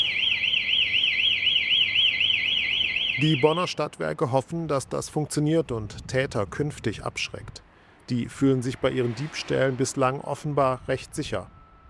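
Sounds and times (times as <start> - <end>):
charging station anti-theft electronic alarm warbling: 0.0 - 3.6
speech: 3.2 - 11.6.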